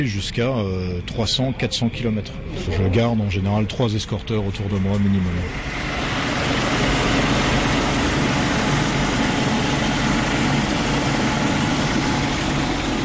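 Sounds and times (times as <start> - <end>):
speech: 0.0 - 6.1
military helicopter in flight landing: 0.0 - 13.0.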